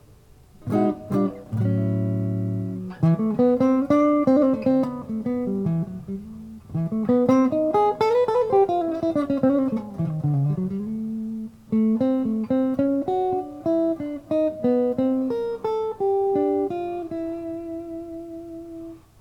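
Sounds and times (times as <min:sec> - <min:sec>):
clean electric guitar on neck pickup with tone control at three to four: 0:00.6 - 0:19.2.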